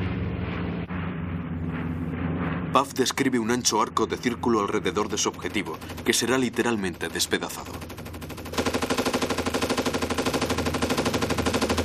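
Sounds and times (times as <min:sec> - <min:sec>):
heavy drone of a C-47 aircraft: 0:00.0 - 0:11.8
speech: 0:02.8 - 0:08.0
rotary-barrel Gatling machine guns firing from a circling C-47 aircraft: 0:04.8 - 0:11.8.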